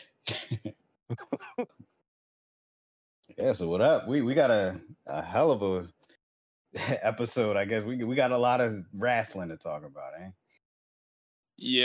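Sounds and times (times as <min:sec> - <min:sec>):
person clearing throat with gravelly rasps: 0:00.3 - 0:01.6
speech: 0:03.4 - 0:06.0, 0:06.8 - 0:10.4, 0:11.6 - 0:11.8.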